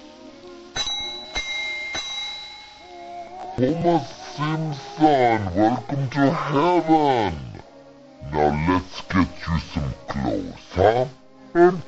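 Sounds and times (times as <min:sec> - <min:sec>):
faint sustained musical background: 0:00.0 - 0:11.8
desk bell tapped with bright dings: 0:00.8 - 0:03.3
speech: 0:03.6 - 0:07.5, 0:08.3 - 0:11.8.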